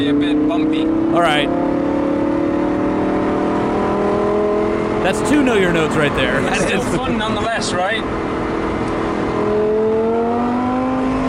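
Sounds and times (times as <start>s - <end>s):
speech: 0.0s - 1.9s, 5.0s - 8.4s
V10 high-performance sports car engine revving: 0.1s - 11.2s
laughter: 5.0s - 7.2s.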